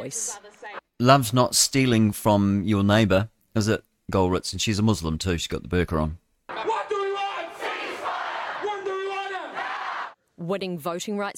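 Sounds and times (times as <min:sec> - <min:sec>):
speech: 0:00.0 - 0:06.2, 0:10.5 - 0:11.3
crowd chanting in unison at a protest march: 0:06.5 - 0:10.2.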